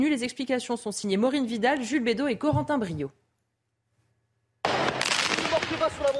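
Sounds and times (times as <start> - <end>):
speech: 0.0 - 3.2
fireworks mortars fired at a prison in daylight: 4.6 - 6.1.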